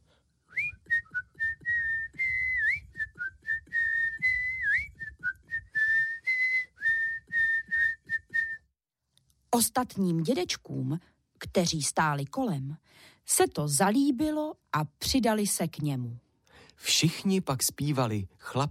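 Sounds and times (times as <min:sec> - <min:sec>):
boy whistling a cheerful song melody: 0:00.5 - 0:08.7
speech: 0:09.5 - 0:16.2, 0:16.8 - 0:18.6.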